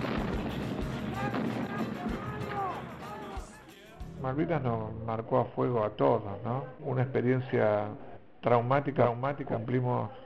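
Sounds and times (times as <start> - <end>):
artillery gunfire in the Falklands war: 0.0 - 3.6
continuous roar of battle noise: 0.0 - 3.7
people shouting: 0.0 - 4.1
speech: 4.2 - 10.2.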